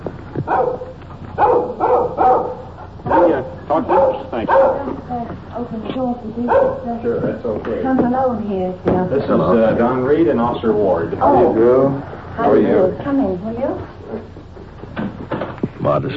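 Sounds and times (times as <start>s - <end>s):
small dog barking and yapping: 0.4s - 5.0s, 6.4s - 7.0s
speech: 0.5s - 0.9s, 5.6s - 14.2s, 15.9s - 16.1s.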